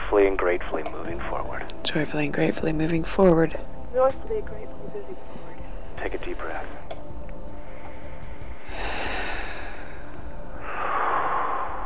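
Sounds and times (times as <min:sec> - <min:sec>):
steady low hum: 0:00.0 - 0:11.8
speech: 0:00.1 - 0:06.9
group of people yawning: 0:08.7 - 0:11.8.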